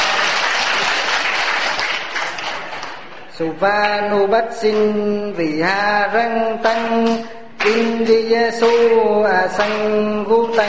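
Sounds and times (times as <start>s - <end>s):
applause from an assembled audience at a gathering: 0.0s - 3.2s
speech: 3.4s - 10.6s.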